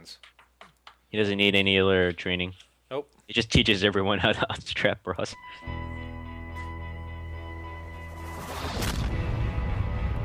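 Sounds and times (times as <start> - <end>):
speech: 0.0 - 0.4, 1.1 - 5.9
steady tonal drone: 5.4 - 10.2
loud explosion trailing into a rumbling roar: 8.2 - 10.2.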